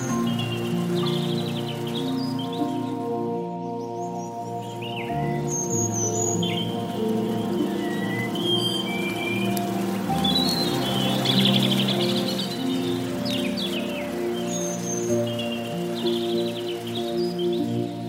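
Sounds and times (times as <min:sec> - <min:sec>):
bright bird chirps: 0:00.0 - 0:18.0
faint steady rustle of gently moving water: 0:00.0 - 0:18.0
soft sustained piano chords: 0:00.0 - 0:18.0.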